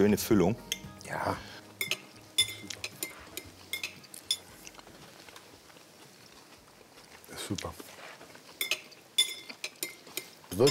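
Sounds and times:
speech: 0:00.0 - 0:01.5
cutlery clinking and scraping on a plate while cutting a small filled dish: 0:01.8 - 0:04.5, 0:08.6 - 0:10.6.

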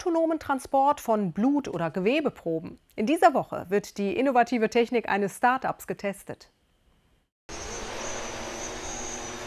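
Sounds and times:
speech: 0:00.0 - 0:06.6
transport drone whirring carrying blood samples from a hospital in Essen: 0:07.5 - 0:09.4.

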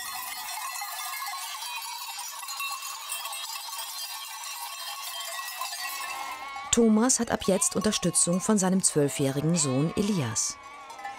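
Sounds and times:
bells of a flock of sheep clanking on a steep mountain ski slope: 0:00.0 - 0:11.1
sheep bleating: 0:06.1 - 0:11.1
speech: 0:06.8 - 0:10.7.

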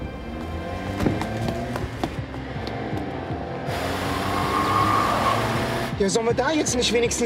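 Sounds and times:
steady rumble of traffic or engine noise: 0:00.0 - 0:07.2
footfalls of a person running: 0:00.3 - 0:03.2
speech: 0:06.0 - 0:07.2.

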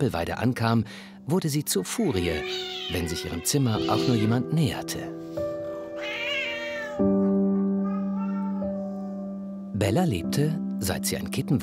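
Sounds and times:
speech: 0:00.0 - 0:05.4, 0:09.8 - 0:11.6
domestic cat meowing and yowling: 0:02.1 - 0:04.4, 0:05.8 - 0:09.2.

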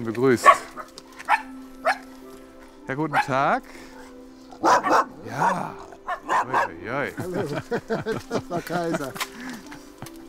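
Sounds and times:
speech: 0:00.0 - 0:00.8, 0:02.9 - 0:03.9, 0:04.8 - 0:09.3
three dogs barking and yipping excitedly at a countryside manor house: 0:00.3 - 0:02.2, 0:03.0 - 0:06.8
laughter: 0:05.2 - 0:10.2.

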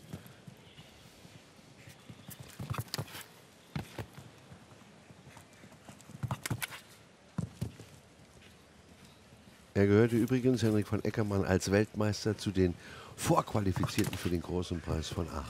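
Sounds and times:
horse hooves clip-clopping: 0:00.0 - 0:10.9
steady low hiss: 0:00.0 - 0:15.4
speech: 0:09.8 - 0:15.4.

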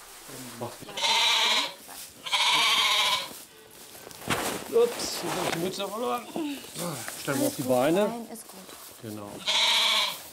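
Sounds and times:
speech: 0:00.3 - 0:02.3, 0:04.7 - 0:09.7
billy goat bleating in a stable: 0:00.8 - 0:03.4, 0:09.4 - 0:10.3.

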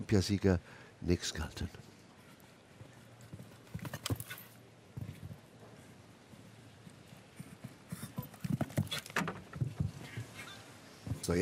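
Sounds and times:
speech: 0:00.0 - 0:01.9, 0:11.3 - 0:11.4
faint noise: 0:00.0 - 0:11.4
horse hooves clip-clopping on soft arena footing on a show-jumping course: 0:02.2 - 0:10.4.

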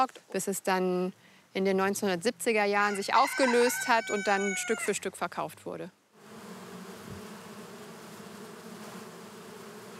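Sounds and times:
speech: 0:00.0 - 0:06.0
swarm of honeybees buzzing: 0:02.7 - 0:05.0, 0:06.2 - 0:09.9.

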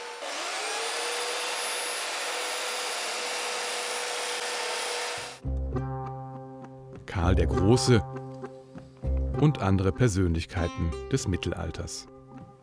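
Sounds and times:
sculptor's chainsaw carving a figure in wood: 0:00.0 - 0:05.4
speech: 0:07.2 - 0:08.2, 0:09.4 - 0:12.2.

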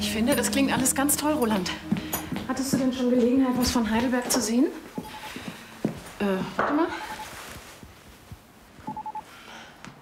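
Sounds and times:
speech: 0:00.1 - 0:05.0, 0:06.2 - 0:07.1
telephone electronic beeps signalling an incoming call: 0:07.0 - 0:07.3, 0:08.9 - 0:09.2.

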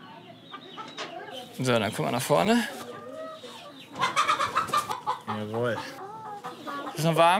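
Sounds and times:
egg-laying hens clucking and cackling on a farm: 0:00.1 - 0:07.3
speech: 0:01.6 - 0:02.8, 0:05.4 - 0:06.0, 0:07.0 - 0:07.3.

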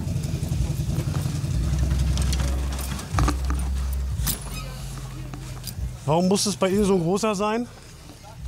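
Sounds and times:
truck tractor unit engine idling: 0:00.0 - 0:08.4
metallic clinks and rattles while the truck front is opened: 0:00.8 - 0:04.8, 0:05.4 - 0:06.0
speech: 0:06.1 - 0:07.8.

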